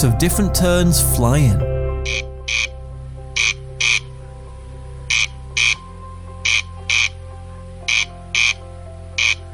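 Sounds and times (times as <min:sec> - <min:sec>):
speech: 0:00.0 - 0:02.6
corncrake dry rasping call: 0:02.1 - 0:02.7, 0:03.4 - 0:04.1, 0:05.1 - 0:05.8, 0:06.4 - 0:07.2, 0:07.9 - 0:08.6, 0:09.2 - 0:09.5.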